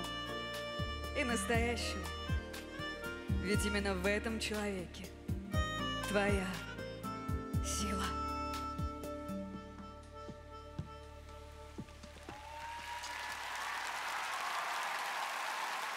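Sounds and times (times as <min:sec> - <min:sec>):
soft musical passage: 0:00.0 - 0:12.3
speech: 0:01.2 - 0:02.2, 0:03.4 - 0:05.1, 0:06.1 - 0:06.7, 0:07.6 - 0:08.2
large audience applauding: 0:12.0 - 0:15.9.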